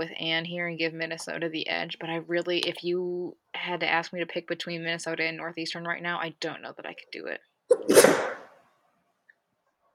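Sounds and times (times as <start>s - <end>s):
speech: 0.0s - 8.3s
sneeze: 7.7s - 8.6s.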